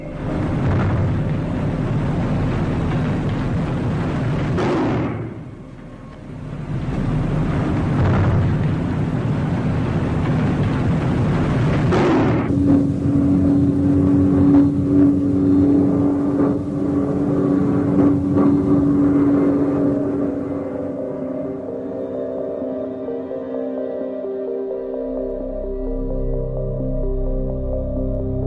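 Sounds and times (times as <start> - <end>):
heavy rumbling blasts like bombs exploding: 0.0 - 22.6
airplanes passing overhead: 0.0 - 28.4.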